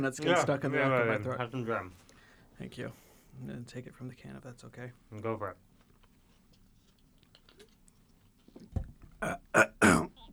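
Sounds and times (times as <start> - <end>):
speech: 0.0 - 2.0, 2.6 - 5.7, 8.7 - 10.0
hiccups: 9.2 - 10.3.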